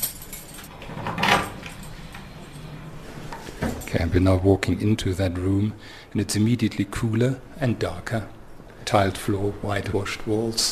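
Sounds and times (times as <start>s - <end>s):
metallic jangling of keys: 0.0s - 0.8s
heavy security door unlocked and swung open: 0.0s - 1.9s
speech: 3.9s - 10.7s.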